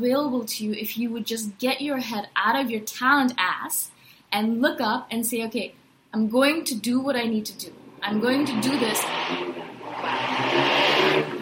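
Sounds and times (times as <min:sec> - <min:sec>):
speech: 0:00.0 - 0:11.3
loud motorbike engine roaring past: 0:07.6 - 0:11.4.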